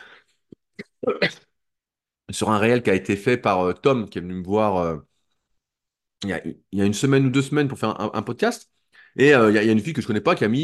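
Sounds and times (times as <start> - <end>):
cough: 0.8 - 1.5
speech: 1.0 - 1.5, 2.3 - 5.1, 6.2 - 10.6.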